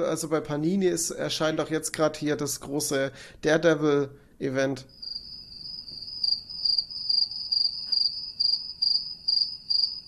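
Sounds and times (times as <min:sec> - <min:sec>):
speech: 0:00.0 - 0:05.0
crickets chirping: 0:04.9 - 0:10.0.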